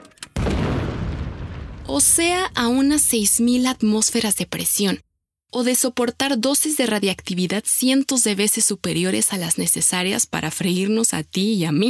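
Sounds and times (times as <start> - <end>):
tank cannon firing: 0.4 - 4.4
speech: 1.9 - 11.8.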